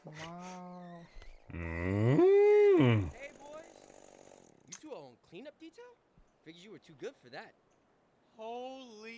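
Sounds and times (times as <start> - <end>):
speech: 1.5 - 1.9, 5.7 - 7.7, 8.4 - 9.1
cow lowing in long droning moos: 1.5 - 3.2.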